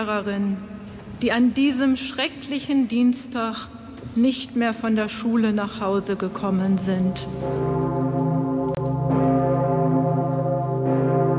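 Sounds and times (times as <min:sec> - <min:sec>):
speech: 0:00.0 - 0:08.0
huge old bell in the north tower of St. Stephen's Cathedral tolling: 0:07.0 - 0:11.3.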